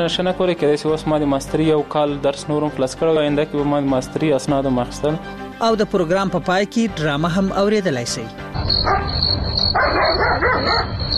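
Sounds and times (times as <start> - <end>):
speech: 0.0 - 11.1
high insect-like chirring drone: 8.6 - 11.1
dog barking: 8.8 - 11.0.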